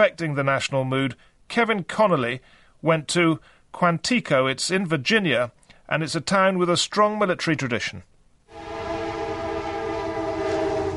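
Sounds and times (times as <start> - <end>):
speech: 0.0 - 8.1
rattling commuter train in Quantico, Virginia: 8.6 - 10.9.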